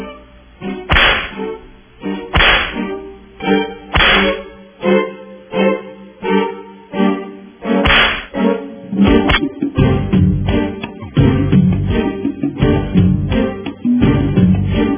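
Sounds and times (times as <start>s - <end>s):
faint tonal background: 0.0s - 14.9s
whip lashes: 0.9s - 1.5s, 2.3s - 2.9s, 3.9s - 4.5s, 7.8s - 8.4s, 9.3s - 9.5s.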